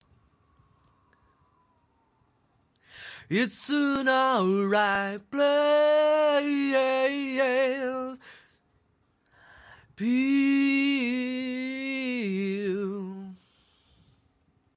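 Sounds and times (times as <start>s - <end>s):
male a cappella vocal: 3.2s - 8.4s, 9.8s - 13.5s.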